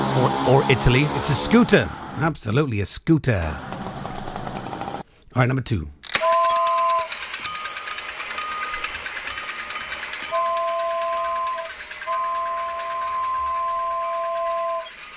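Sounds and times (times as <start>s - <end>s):
speech: 0.1s - 3.7s, 5.3s - 5.9s
kid's miniature toy train running with a mechanical rattle: 6.1s - 15.1s
two-note toy train whistle: 6.2s - 7.2s, 10.2s - 15.1s.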